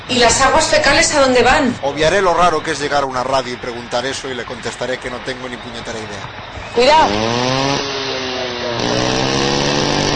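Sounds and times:
speech: 0:00.1 - 0:07.9
chainsaw engine running: 0:06.6 - 0:10.1.

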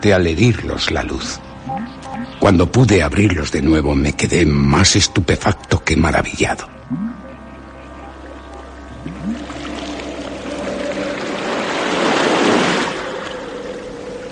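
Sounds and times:
speech: 0:00.0 - 0:07.2
faint rising calls: 0:00.6 - 0:05.7, 0:06.7 - 0:14.2
ocean waves breaking on shore: 0:09.0 - 0:14.2.

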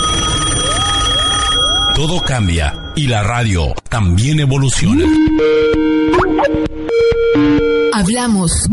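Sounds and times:
old home telephone bell ringing: 0:00.0 - 0:03.0
speech: 0:02.0 - 0:08.7.

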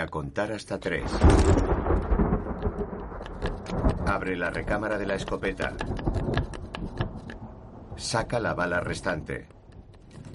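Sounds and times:
speech: 0:00.0 - 0:02.1, 0:04.1 - 0:06.6, 0:08.0 - 0:09.6
thunder after a lightning flash in a storm: 0:01.0 - 0:08.5.

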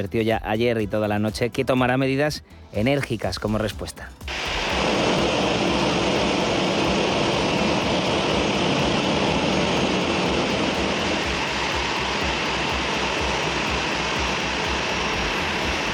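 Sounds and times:
speech: 0:00.0 - 0:04.7
airplane engines roaring while coming in to land: 0:04.3 - 0:15.9.

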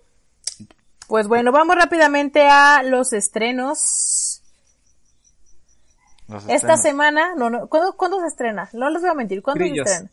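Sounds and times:
speech: 0:01.1 - 0:04.2, 0:06.3 - 0:10.1
crickets chirping: 0:04.0 - 0:10.0.

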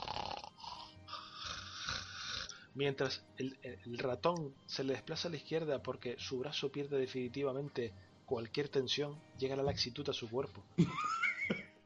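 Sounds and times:
person imitating light snoring of a dozing man: 0:00.0 - 0:02.6
speech: 0:02.8 - 0:11.3.

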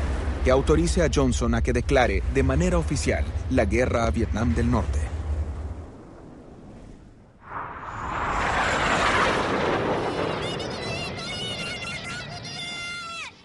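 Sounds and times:
speech: 0:00.4 - 0:05.1
military aircraft passing overhead: 0:07.5 - 0:13.4.

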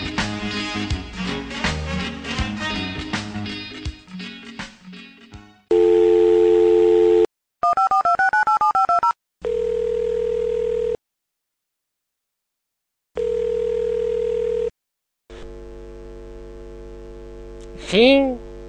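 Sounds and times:
busy music: 0:00.0 - 0:05.6
touch-tone dialing beeps: 0:05.7 - 0:09.2
steady telephone dial tone: 0:05.7 - 0:11.0, 0:13.2 - 0:14.7
speech: 0:18.0 - 0:18.4.

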